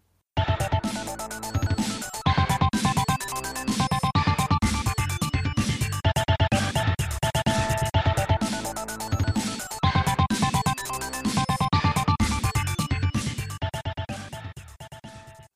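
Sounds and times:
upbeat video game character-select music loop with synth melodies: 0:00.4 - 0:15.5.

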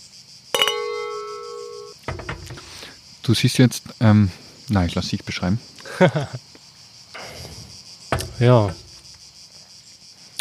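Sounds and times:
wine glasses clinking in a toast: 0:00.6 - 0:02.6
dull glassy knock: 0:02.1 - 0:02.7, 0:07.2 - 0:09.1
speech: 0:03.2 - 0:06.5, 0:08.4 - 0:08.8
laughter: 0:05.8 - 0:06.6.

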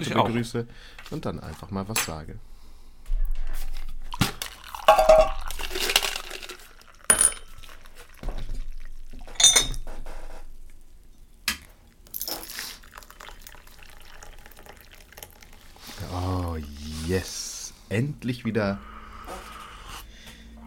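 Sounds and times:
speech: 0:00.0 - 0:02.5, 0:18.2 - 0:18.9
tea being poured into a glass: 0:04.2 - 0:09.4, 0:12.0 - 0:17.1
clinks: 0:07.1 - 0:07.7.

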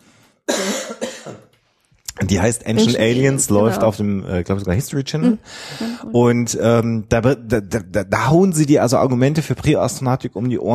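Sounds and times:
harsh coughs: 0:00.5 - 0:01.5
speech: 0:00.9 - 0:01.6, 0:02.2 - 0:10.7.

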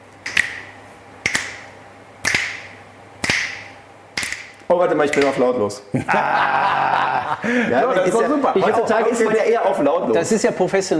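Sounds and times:
finger snaps: 0:00.3 - 0:05.4
speech: 0:04.7 - 0:10.9
laughter: 0:05.9 - 0:09.9.

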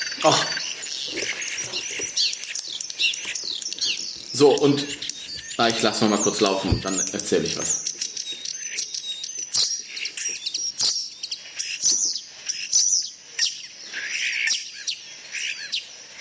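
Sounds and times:
starling singing with mimicry of other birds: 0:00.0 - 0:16.2
speech: 0:00.2 - 0:00.6, 0:04.4 - 0:05.0, 0:05.6 - 0:07.9.

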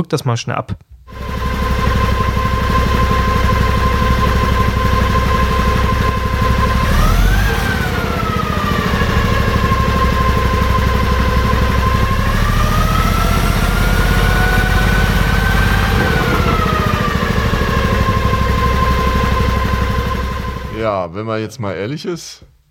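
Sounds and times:
speech: 0:00.0 - 0:01.6, 0:21.0 - 0:22.5
hydrogen combustion truck engine idling: 0:01.1 - 0:20.8.

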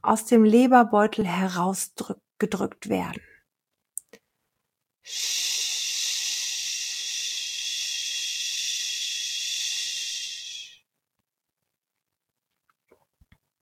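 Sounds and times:
speech: 0:00.0 - 0:03.3, 0:05.0 - 0:05.5
long slow exhale breathed out steadily: 0:05.1 - 0:10.8.

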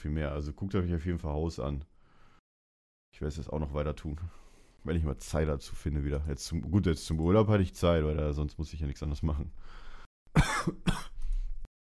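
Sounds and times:
speech: 0:00.0 - 0:02.0, 0:03.1 - 0:11.1
person coughing harshly: 0:10.3 - 0:11.2.

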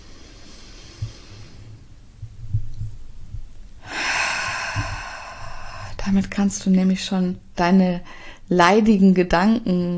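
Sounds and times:
deep slow breath drawn in during a guided relaxation: 0:00.0 - 0:02.0, 0:03.8 - 0:06.0
faint low hum: 0:00.0 - 0:09.9
speech: 0:06.0 - 0:09.9.

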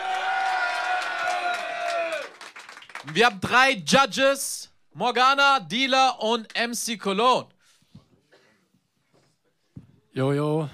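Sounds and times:
rap battle audience cheering and whooping: 0:00.0 - 0:02.4
speech: 0:03.0 - 0:07.5, 0:10.2 - 0:10.7.

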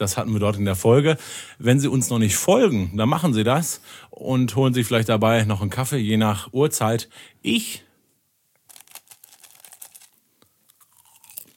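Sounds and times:
speech: 0:00.0 - 0:07.9
eating popcorn, crunching and chewing: 0:08.6 - 0:11.5.

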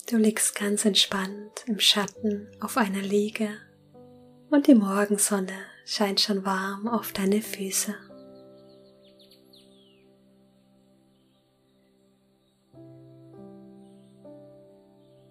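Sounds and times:
speech: 0:00.0 - 0:03.7, 0:04.5 - 0:08.1
birds chirping and twittering in the early morning amid greenery in Bali: 0:07.8 - 0:15.2.

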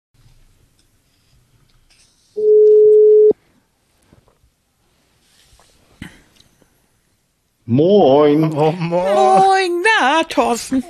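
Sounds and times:
telephone ringing tone while placing a call: 0:02.4 - 0:03.3
speech: 0:07.7 - 0:10.8.

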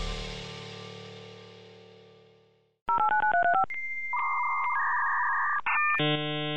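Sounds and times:
1995 dial-up modem connecting to the internet: 0:02.9 - 0:06.5.

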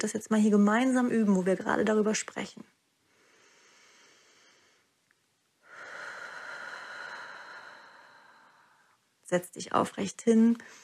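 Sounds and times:
speech: 0:00.0 - 0:02.8, 0:09.3 - 0:10.8
deep breathing in and out in a guided deep-breathing exercise: 0:03.0 - 0:05.0, 0:05.6 - 0:09.1.

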